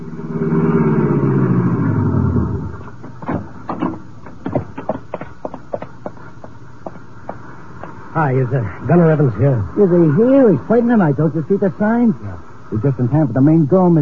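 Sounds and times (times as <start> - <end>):
car engine rumbling as the car is driven out to an arena: 0.0 - 13.2
scattered clicks, thumps and knocks: 2.9 - 6.2
speech: 8.2 - 14.0.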